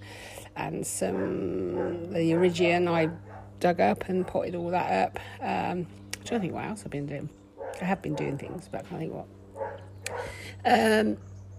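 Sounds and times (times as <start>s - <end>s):
faint steady hum: 0.0s - 11.5s
speech: 0.6s - 9.4s, 10.6s - 11.3s
dog barking: 1.1s - 3.6s, 7.6s - 8.7s, 9.6s - 10.4s.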